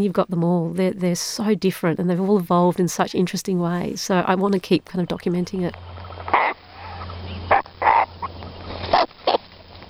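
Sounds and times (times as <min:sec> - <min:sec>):
speech: 0:00.0 - 0:06.6
low steady hum: 0:00.0 - 0:09.8
cockatoo screeching: 0:06.0 - 0:09.5.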